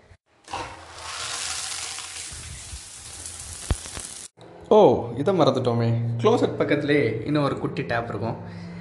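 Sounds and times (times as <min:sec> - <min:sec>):
shower water streaming down in a hissing spray: 0:00.4 - 0:04.4
speech: 0:04.7 - 0:08.7.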